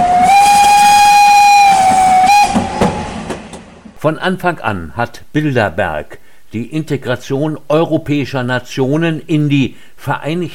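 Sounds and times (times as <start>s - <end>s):
steam train whistle blowing a long piercing note: 0.0s - 3.2s
steam train hissing: 0.0s - 3.9s
rolling steam train wheels clattering: 1.7s - 4.0s
speech: 4.0s - 10.5s.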